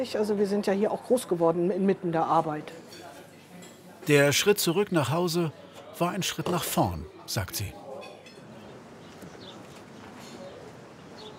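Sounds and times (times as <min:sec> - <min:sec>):
speech: 0:00.0 - 0:03.1, 0:04.0 - 0:07.8
dense steady noise: 0:00.0 - 0:11.3
birds chirping and cooing in an aviary: 0:10.4 - 0:11.3.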